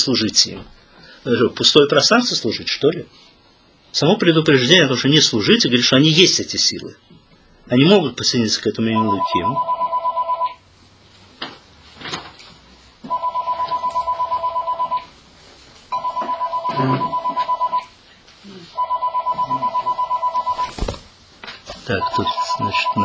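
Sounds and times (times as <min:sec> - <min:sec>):
speech: 0:00.0 - 0:03.3, 0:03.9 - 0:07.1, 0:07.7 - 0:09.7, 0:16.8 - 0:17.1, 0:21.9 - 0:23.0
mobile phone ringing with an electronic trill: 0:08.9 - 0:10.6, 0:13.0 - 0:15.1, 0:15.9 - 0:17.9, 0:18.8 - 0:20.8, 0:21.9 - 0:23.0.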